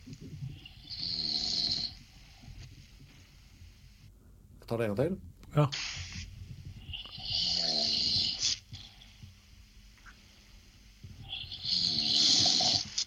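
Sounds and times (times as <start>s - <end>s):
person snoring with loud rattling snorts and an airy hiss: 0.6s - 2.0s, 7.0s - 9.1s, 11.2s - 13.0s
speech: 4.7s - 5.9s.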